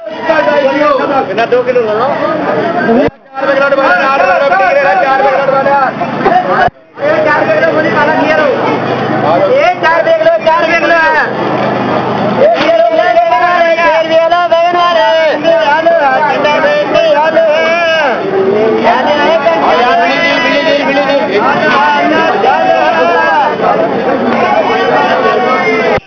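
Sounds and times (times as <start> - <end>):
market ambience in Delhi: 0.0 - 26.0.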